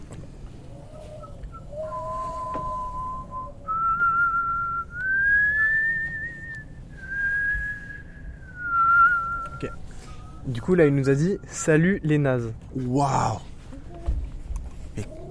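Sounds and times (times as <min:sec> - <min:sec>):
recording played back slowed down: 0:00.0 - 0:12.1
speech: 0:10.4 - 0:13.5.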